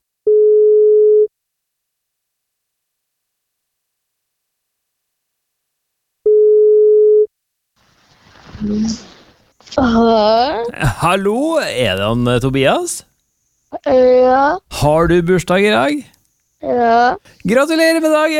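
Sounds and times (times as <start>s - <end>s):
phone ringback tone during a radio call: 0.3s - 1.3s, 6.3s - 7.3s
speech: 8.6s - 9.1s, 9.7s - 13.1s, 13.8s - 18.3s.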